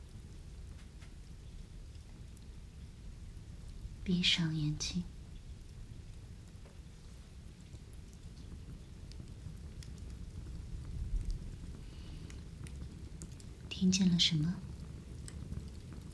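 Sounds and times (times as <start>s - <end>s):
rain falling: 0.0s - 16.1s
speech: 4.1s - 5.2s, 13.8s - 14.7s.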